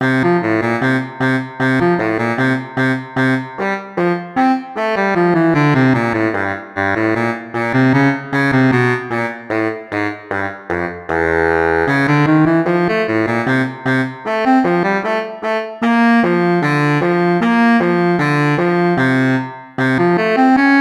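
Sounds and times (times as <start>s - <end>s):
baritone sax playing fast: 0.0s - 20.7s.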